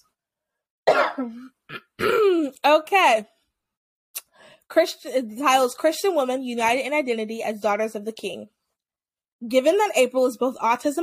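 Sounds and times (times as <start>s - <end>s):
person coughing: 0.9s - 2.6s
speech: 1.2s - 3.4s, 4.7s - 8.6s, 9.4s - 11.0s.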